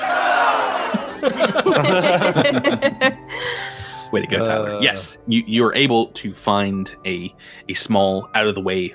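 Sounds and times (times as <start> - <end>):
crowd cheering huzzah: 0.0 - 2.5
crowd laughing: 0.0 - 3.4
speech: 1.5 - 3.2, 4.1 - 8.9.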